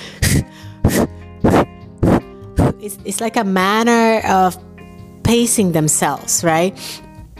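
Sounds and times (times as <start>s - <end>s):
person imitating the heavy rhythmic breathing of a runner: 0.0s - 2.8s
speech: 2.8s - 4.7s, 5.3s - 7.0s.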